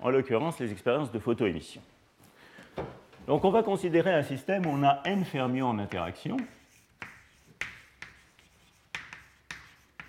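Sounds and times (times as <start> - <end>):
speech: 0.0 - 2.0, 3.3 - 6.6
writing on a board during a lecture: 4.0 - 10.0.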